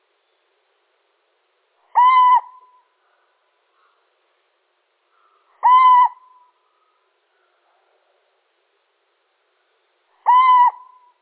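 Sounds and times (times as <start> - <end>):
male little owl hooting: 1.9 - 2.9, 5.2 - 7.0, 10.2 - 11.2.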